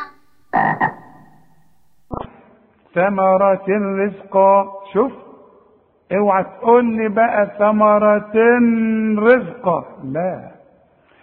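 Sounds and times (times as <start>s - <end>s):
frog croaking: 0.0s - 2.2s
speech: 3.0s - 5.2s, 6.1s - 10.5s.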